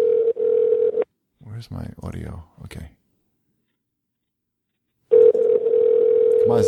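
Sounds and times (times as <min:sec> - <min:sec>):
electronic telephone ring tone on a prank phone call: 0:00.0 - 0:01.0, 0:05.1 - 0:06.6
speech: 0:01.6 - 0:03.0, 0:06.5 - 0:06.6.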